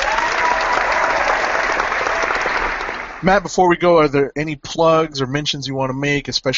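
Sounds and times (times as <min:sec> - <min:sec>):
group applauding: 0:00.0 - 0:03.5
speech: 0:03.2 - 0:06.5.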